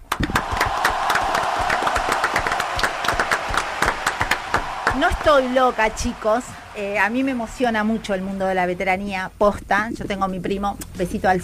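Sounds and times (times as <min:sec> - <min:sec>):
crowd applauding: 0:00.0 - 0:09.0
audience members shouting: 0:00.3 - 0:08.9
speech: 0:05.0 - 0:11.4.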